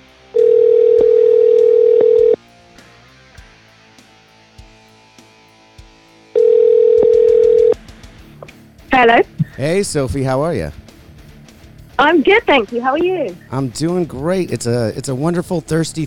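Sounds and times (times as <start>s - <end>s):
telephone dial tone while placing a call: 0.4s - 2.4s, 6.4s - 7.8s
speech: 9.0s - 10.8s, 12.0s - 16.0s.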